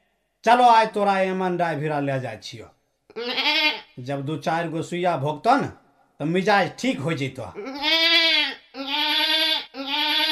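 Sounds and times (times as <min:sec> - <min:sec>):
speech: 0:00.4 - 0:08.0
sick goat bleating loudly: 0:03.1 - 0:04.0, 0:07.6 - 0:10.3.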